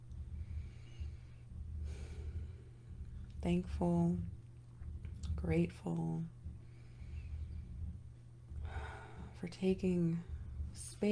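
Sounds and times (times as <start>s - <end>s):
steady low hum: 0.0s - 11.1s
slow deep breath during breathwork: 0.3s - 3.2s, 6.5s - 9.4s
speech: 3.4s - 4.4s, 5.4s - 6.4s, 9.4s - 11.1s.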